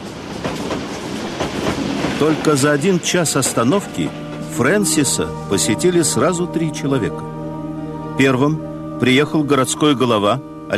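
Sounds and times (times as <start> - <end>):
train wheels clacking over rail joints: 0.0 - 4.6
train rolling along at range: 0.0 - 6.4
speech: 2.2 - 7.4, 8.2 - 10.7.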